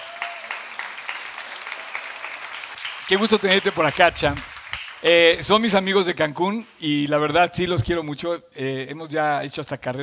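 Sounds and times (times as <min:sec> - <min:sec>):
audience applause: 0:00.0 - 0:05.8
speech: 0:03.1 - 0:10.0.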